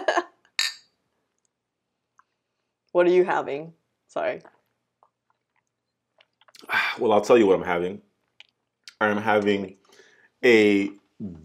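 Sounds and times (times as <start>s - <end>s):
drinks glasses clinking together in a toast: 0.6s - 0.9s
speech: 3.0s - 4.6s, 7.0s - 8.1s, 9.0s - 9.8s, 10.4s - 11.4s.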